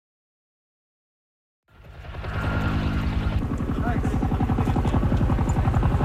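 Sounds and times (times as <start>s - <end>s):
helicopter rotor thumping while dropping water on a blaze in Greece: 1.7s - 6.0s
loud helicopter engine whine: 1.7s - 6.0s.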